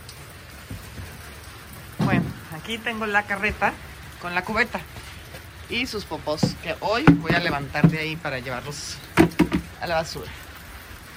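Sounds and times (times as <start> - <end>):
heavy rain pattering on surfaces: 0.0 - 11.1
thuds: 2.0 - 2.6, 6.4 - 8.4, 9.1 - 9.7
speech: 2.1 - 5.0, 5.7 - 9.2, 9.8 - 10.4.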